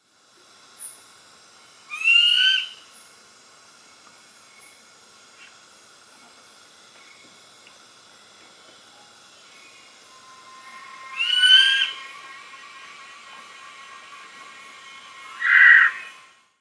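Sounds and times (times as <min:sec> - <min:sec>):
Buffy fish owl Ketupa ketupu ketupu call: 0:01.9 - 0:02.8, 0:10.6 - 0:12.4, 0:15.3 - 0:16.1.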